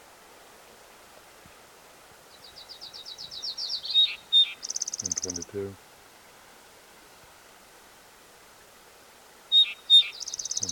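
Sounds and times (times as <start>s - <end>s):
Gillibray's warbler singing: 2.3s - 5.5s, 9.5s - 10.7s
speech: 5.0s - 5.9s.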